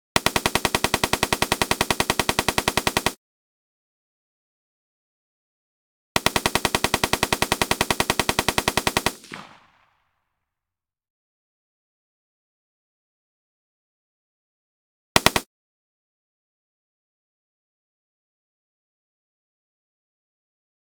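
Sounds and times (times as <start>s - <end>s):
simulated AK-47 rifle burst fire: 0.2s - 3.2s, 6.2s - 10.0s, 15.2s - 15.5s.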